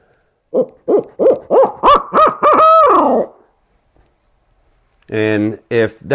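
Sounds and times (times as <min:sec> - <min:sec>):
barred owl caterwauling locator call from a handheld caller for turkeys: 0:00.5 - 0:03.5
speech: 0:05.1 - 0:06.1.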